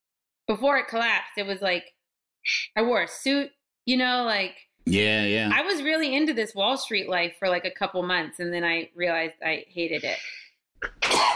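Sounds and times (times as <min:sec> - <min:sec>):
speech: 0:00.5 - 0:11.3
person sneezing: 0:10.8 - 0:11.3.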